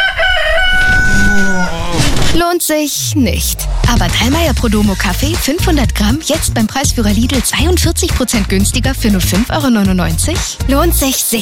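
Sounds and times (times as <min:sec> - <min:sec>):
rooster crowing: 0:00.0 - 0:02.0
speech: 0:02.6 - 0:11.3.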